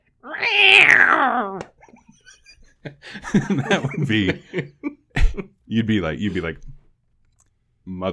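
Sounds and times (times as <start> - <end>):
person imitating a cat meowing: 0.2 - 1.7
laughter: 1.8 - 5.6
speech: 3.0 - 4.8, 5.7 - 6.7, 7.9 - 8.1.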